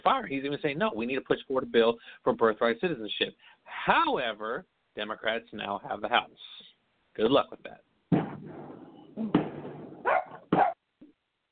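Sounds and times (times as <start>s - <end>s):
speech: 0.0s - 9.3s
thump: 8.1s - 10.8s
dog giving short sharp barks: 10.0s - 10.8s
faint yip: 10.0s - 10.8s.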